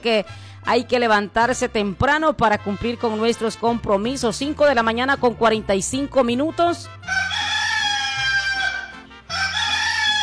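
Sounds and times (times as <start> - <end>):
speech: 0.0 - 7.3
rooster crowing: 7.1 - 10.2.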